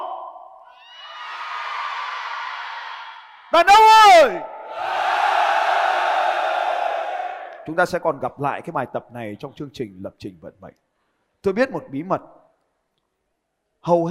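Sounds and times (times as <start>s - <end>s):
speech: 3.5s - 4.5s, 7.7s - 10.8s, 11.4s - 12.4s, 13.8s - 14.0s
amplified shout from a single man leading the audience: 3.6s - 4.6s
men in a large audience shouting on cue: 4.7s - 7.6s.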